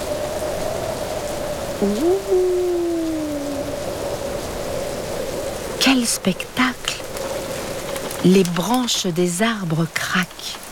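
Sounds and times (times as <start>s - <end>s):
heavy rain hissing: 0.0s - 8.2s
strong wind howling and whistling during a rainstorm: 0.0s - 8.3s
speech: 1.8s - 2.5s, 6.0s - 6.7s, 8.2s - 10.6s.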